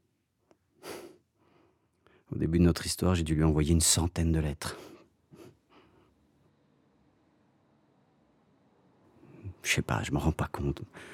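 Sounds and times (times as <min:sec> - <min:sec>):
breathing: 0:00.8 - 0:02.3, 0:04.7 - 0:06.2, 0:10.9 - 0:11.1
speech: 0:02.3 - 0:04.9, 0:09.8 - 0:11.1.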